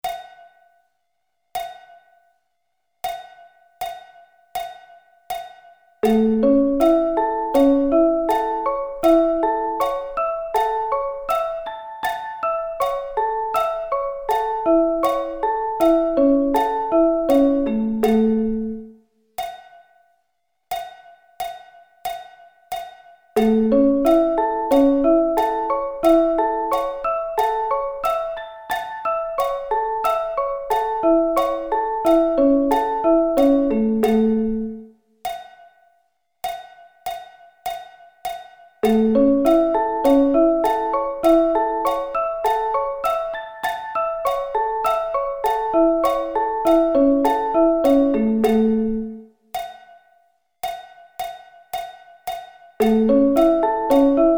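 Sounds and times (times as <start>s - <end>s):
A arpeggio inversions: 6.0s - 18.9s, 23.4s - 34.8s, 38.8s - 49.2s, 52.8s - 54.3s.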